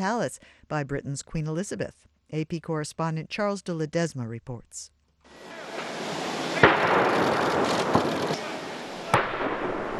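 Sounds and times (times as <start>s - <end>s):
speech: 0.0s - 5.6s
broad wash of noise: 5.3s - 7.8s
ceremonial gun salute firing on a palace lawn: 5.3s - 9.9s.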